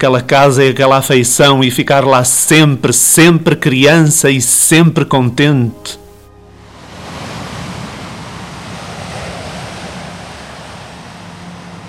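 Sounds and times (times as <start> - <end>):
speech: 0.0 - 6.0
sea waves washing onto a shore: 6.6 - 11.8.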